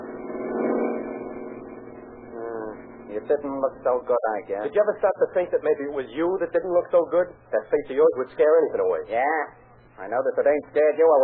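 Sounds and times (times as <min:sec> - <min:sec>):
car engine droning past without stopping: 0:00.0 - 0:03.4
speech: 0:03.2 - 0:11.2.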